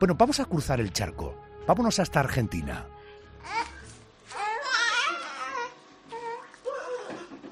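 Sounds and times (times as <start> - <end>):
speech: 0.0 - 3.7
baby crying: 3.4 - 7.4.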